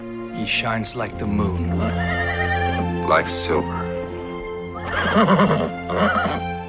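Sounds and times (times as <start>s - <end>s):
speech: 0.4s - 2.2s, 3.1s - 3.8s, 4.8s - 6.5s
white horse whinnying: 1.8s - 2.8s, 4.7s - 6.6s.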